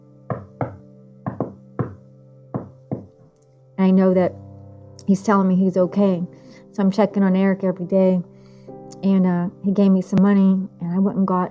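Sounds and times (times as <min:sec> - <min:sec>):
faint hollow knocking on a door or wall: 0:00.3 - 0:03.1
speech: 0:03.8 - 0:04.4, 0:05.1 - 0:08.3, 0:09.0 - 0:11.4.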